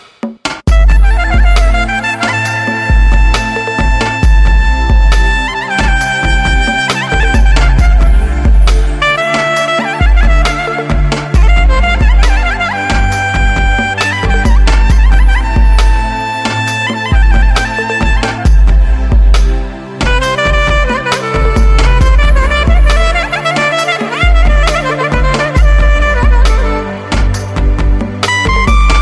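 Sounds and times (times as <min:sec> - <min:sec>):
Armenian clarinet: 0:00.7 - 0:29.0.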